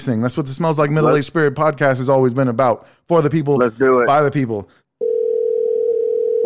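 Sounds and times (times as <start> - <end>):
speech: 0.0 - 4.8
steady telephone dial tone: 5.0 - 6.4.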